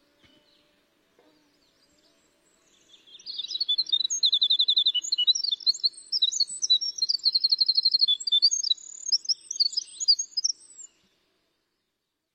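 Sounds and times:
winter wren song played from a tape: 0:01.5 - 0:11.2.

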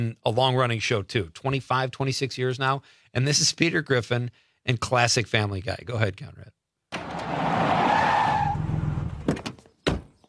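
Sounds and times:
speech: 0:00.0 - 0:06.6
pickup truck engine rumble: 0:07.0 - 0:09.3
pickup truck tires squealing while skidding to a stop: 0:07.0 - 0:09.3.

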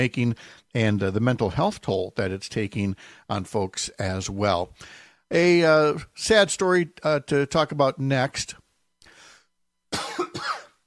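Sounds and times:
speech: 0:00.0 - 0:08.6
person coughing: 0:09.9 - 0:10.8.

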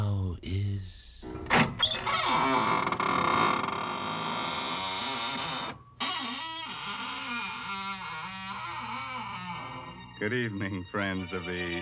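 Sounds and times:
door creaking open in a groaning squeal: 0:01.2 - 0:10.2
speech: 0:10.3 - 0:11.8.

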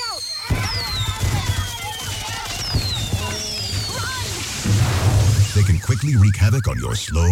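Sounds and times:
pack of fireworks crackling in a dense barrage: 0:00.0 - 0:06.7
speech: 0:05.9 - 0:07.2.

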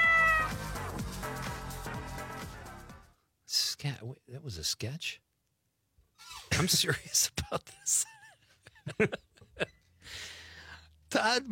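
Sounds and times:
cat meowing: 0:00.0 - 0:00.6
speech: 0:03.8 - 0:05.3, 0:06.6 - 0:08.2, 0:08.8 - 0:10.2, 0:11.1 - 0:11.5.

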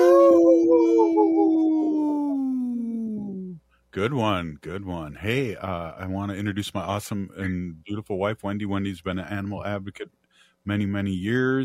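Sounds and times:
wolf howling: 0:00.0 - 0:03.6
speech: 0:04.0 - 0:11.6.

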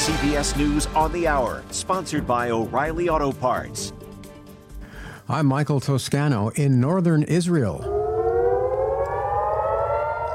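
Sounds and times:
speech: 0:00.1 - 0:04.0, 0:05.3 - 0:08.0
air raid sirens wailing during airstrikes in northern Israel: 0:07.7 - 0:10.3.

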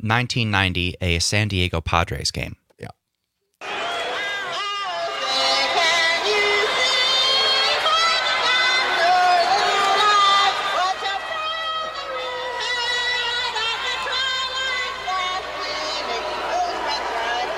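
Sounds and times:
speech: 0:00.0 - 0:03.0
large stadium crowd booing: 0:03.6 - 0:17.5.

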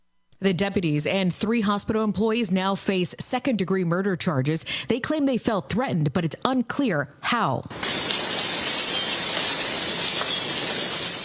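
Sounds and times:
speech: 0:00.4 - 0:08.2
hail falling during a severe thunderstorm: 0:07.7 - 0:11.2.

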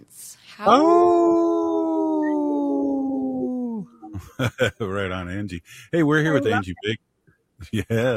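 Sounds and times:
faint noise: 0:00.0 - 0:08.1
speech: 0:00.6 - 0:01.4, 0:04.4 - 0:08.1
person howling like a wolf: 0:00.7 - 0:04.0.

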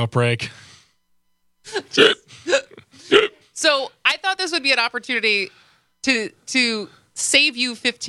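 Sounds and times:
speech: 0:00.0 - 0:00.7, 0:01.6 - 0:08.0
person hiccuping: 0:01.7 - 0:03.5.

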